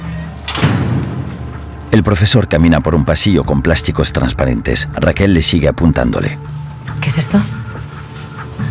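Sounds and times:
warehouse door swinging shut with a dull thud: 0:00.5 - 0:01.8
speech: 0:01.9 - 0:07.6.

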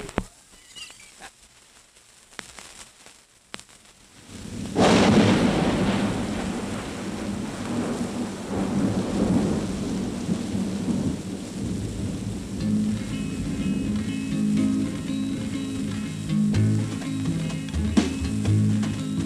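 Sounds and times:
recorded heavy rain played from a vinyl record: 0:00.0 - 0:19.2
sparse crackles from a vinyl record at 45 rpm: 0:00.0 - 0:19.2
recorded roll of thunder played from a vinyl record: 0:04.2 - 0:14.0.

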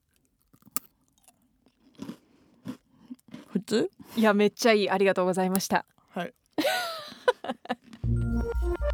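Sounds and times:
crunchy snack sticks being bitten and chewed: 0:00.0 - 0:04.2, 0:07.8 - 0:08.8
speech: 0:03.6 - 0:06.9.

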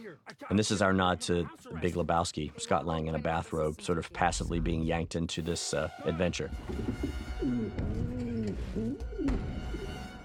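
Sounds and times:
speech: 0:00.1 - 0:08.2
pigeons cooing: 0:06.7 - 0:10.2.

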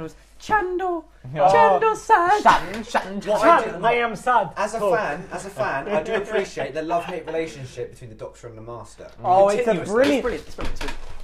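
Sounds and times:
speech: 0:00.0 - 0:11.0
laughter: 0:06.9 - 0:07.6
wooden chair cracking and clattering as it gives way: 0:10.0 - 0:11.2.

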